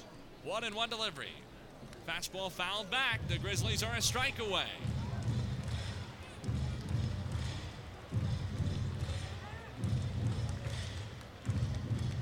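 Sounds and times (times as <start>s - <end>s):
baseball stadium crowd noise: 0.0s - 12.2s
speech: 0.4s - 1.5s, 2.1s - 4.9s
baseball stadium crowd stomping in rhythm: 3.1s - 12.2s.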